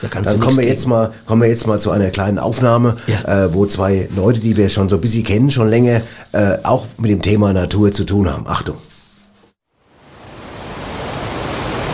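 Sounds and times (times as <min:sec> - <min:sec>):
speech: 0:00.0 - 0:08.9
roaring masses of rushing water: 0:09.9 - 0:11.9.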